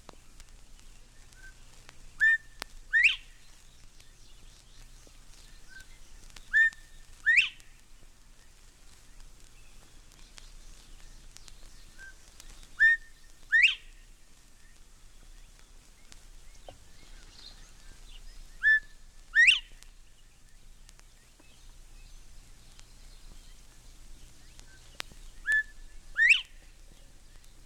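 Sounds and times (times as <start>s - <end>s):
faint outdoor hum: 0.0s - 27.6s
northern bobwhite two-note whistled call: 1.3s - 1.6s, 2.2s - 3.5s, 5.4s - 7.8s, 10.6s - 14.0s, 16.6s - 19.9s, 24.4s - 26.8s.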